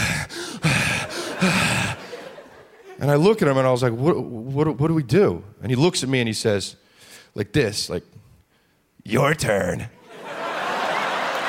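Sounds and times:
man's voice imitating heavy ragged breathing: 0.0s - 2.2s
laughter: 0.6s - 3.3s, 10.0s - 11.4s
speech: 1.4s - 1.7s, 3.0s - 6.8s, 7.4s - 8.2s, 9.0s - 10.0s.

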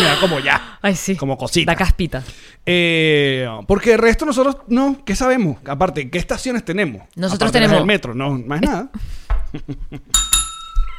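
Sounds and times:
indistinct voice sounds: 0.0s - 0.8s
speech: 0.2s - 10.3s
small bell ringing: 10.1s - 10.9s.

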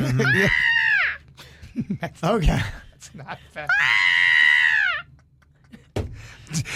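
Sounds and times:
person imitating a screaming goat: 0.2s - 1.2s, 3.7s - 5.1s
people laughing: 1.6s - 3.9s, 4.8s - 6.7s.

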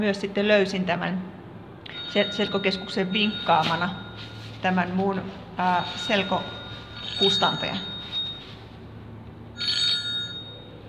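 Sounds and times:
speech: 0.0s - 1.4s, 2.1s - 6.6s, 7.2s - 7.9s
low hum: 0.0s - 10.8s
mobile phone ringing with a bright electronic tone: 1.9s - 4.8s, 5.6s - 8.9s, 9.5s - 10.8s.

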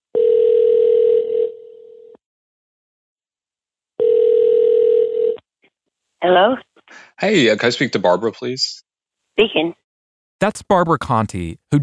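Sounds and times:
telephone dial tone as a call is placed: 0.1s - 2.2s, 4.0s - 5.4s
speech: 6.2s - 8.8s, 9.4s - 9.8s, 10.4s - 11.8s.

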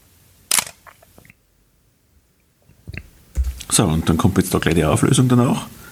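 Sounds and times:
Praktika Super DL rubberized-cloth focal-plane camera shutter snapping: 0.5s - 0.8s
speech: 3.8s - 5.8s.

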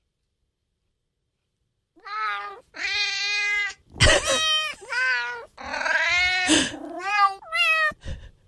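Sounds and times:
cat meowing from a cat translator app: 2.0s - 8.0s.

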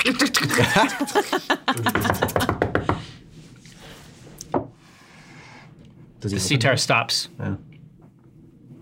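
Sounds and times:
speech: 0.1s - 2.3s, 6.2s - 7.7s
person chuckling: 0.4s - 2.6s
knocking on a door: 1.9s - 3.1s.

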